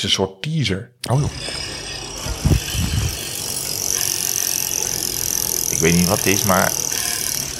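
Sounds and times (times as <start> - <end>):
speech: 0.0 - 1.6, 5.7 - 6.9
bicycle with worn brakes rattling and scraping: 1.5 - 7.5.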